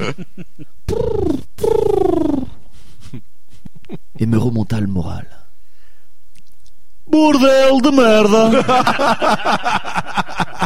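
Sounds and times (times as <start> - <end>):
speech: 0.0 - 1.8, 4.2 - 5.4, 7.1 - 10.6
voice imitating pigeon cooing during a comedy stage show: 0.9 - 2.6
laughter: 8.5 - 10.6.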